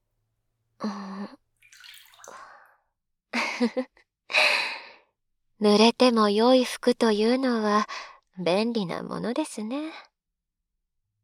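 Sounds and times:
speech: 0.8 - 1.1, 3.6 - 4.0, 5.6 - 10.1
water poured to rinse someone in a bathing setting: 1.6 - 2.6.

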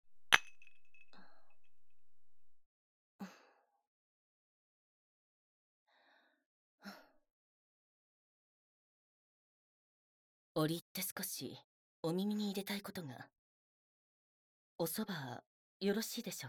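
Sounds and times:
glasses clinking in a toast: 0.1 - 2.2
speech: 10.6 - 13.4, 14.8 - 16.4.

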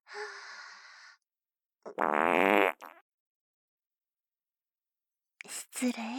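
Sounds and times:
speech: 1.9 - 2.9, 5.8 - 6.1
farts: 1.9 - 3.0.

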